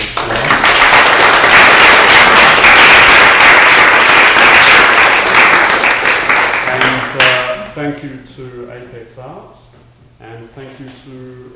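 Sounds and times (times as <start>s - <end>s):
audience applause at the close of a talk at an art space: 0.0s - 7.5s
speech: 7.8s - 9.6s, 10.6s - 11.5s.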